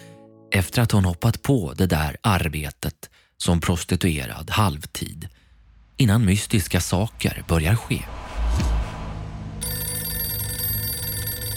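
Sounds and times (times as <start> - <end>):
speech: 0.6 - 5.4, 6.0 - 8.7
low thump: 7.2 - 9.6
telephone ringing with a bright electronic ring: 9.6 - 11.5.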